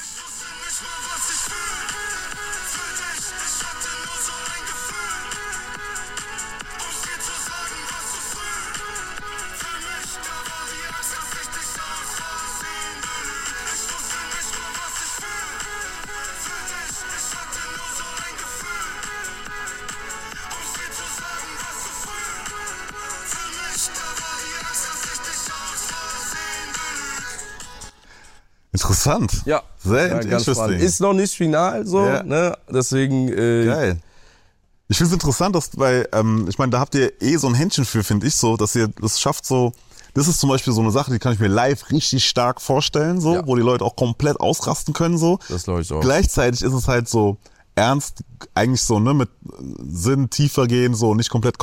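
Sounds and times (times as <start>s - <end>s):
song hook from a small phone speaker: 0.0s - 28.4s
speech: 29.0s - 34.1s, 34.9s - 51.6s.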